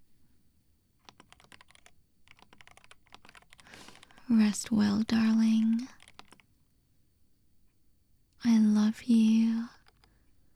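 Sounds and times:
typing on a computer keyboard: 0:01.0 - 0:06.6, 0:09.8 - 0:10.2
speech: 0:04.3 - 0:06.0, 0:08.4 - 0:09.8.

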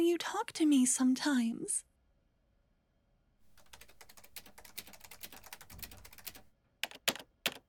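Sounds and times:
speech: 0:00.0 - 0:01.9
forceful typing on a computer keyboard: 0:03.5 - 0:07.6.

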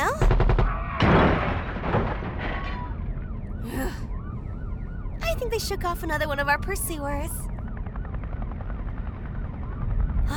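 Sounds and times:
helicopter rotor blades thumping: 0:00.0 - 0:02.4, 0:05.4 - 0:10.3
helicopter engine rumble: 0:03.2 - 0:10.3
speech: 0:05.5 - 0:07.5.

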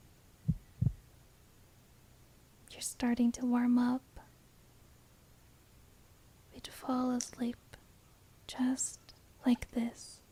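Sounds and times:
human heartbeat: 0:00.4 - 0:01.0
speech: 0:02.8 - 0:04.1, 0:06.8 - 0:07.6, 0:08.5 - 0:10.2.

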